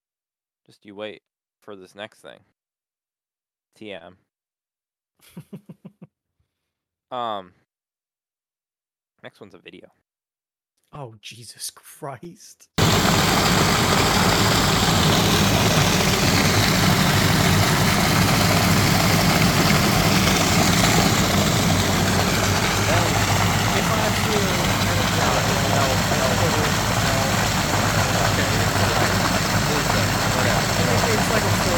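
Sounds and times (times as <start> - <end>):
speech: 0.7 - 2.6, 3.7 - 4.3, 5.2 - 5.9, 7.1 - 7.6, 9.2 - 10.0, 10.9 - 13.8, 30.7 - 31.7
semi truck engine idling: 12.8 - 31.7
water dumping into pool: 12.8 - 31.7.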